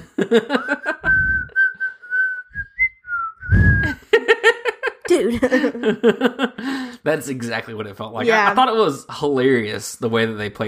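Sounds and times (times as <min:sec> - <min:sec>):
laughter: 0:00.0 - 0:01.4, 0:03.8 - 0:08.4
speech: 0:00.2 - 0:00.9, 0:05.2 - 0:10.6
person whistling a short casual tune: 0:00.8 - 0:04.0
brief bursts of speech-like voicing: 0:08.2 - 0:08.7.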